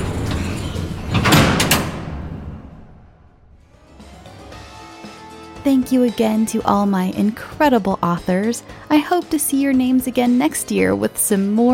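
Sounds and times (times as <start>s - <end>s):
heavy door sliding shut along its track: 0.0s - 3.5s
speech: 5.6s - 11.7s.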